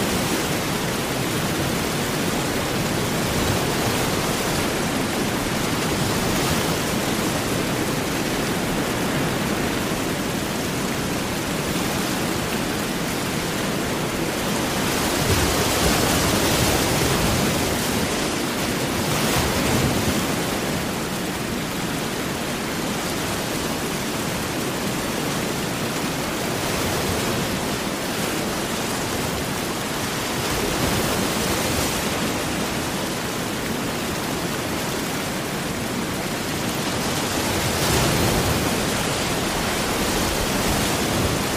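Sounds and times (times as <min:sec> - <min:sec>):
big ocean waves breaking: 0:00.0 - 0:41.5
heavy rain: 0:00.0 - 0:41.5.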